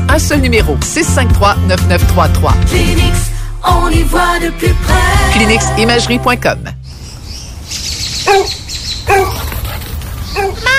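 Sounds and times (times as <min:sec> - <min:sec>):
speech: 0:00.2 - 0:06.8, 0:08.3 - 0:09.2
dog barking: 0:08.2 - 0:10.7.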